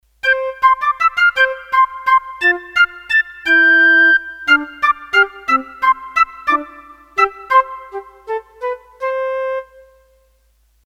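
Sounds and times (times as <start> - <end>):
piccolo flute on a synthesizer: 0.2 - 10.2.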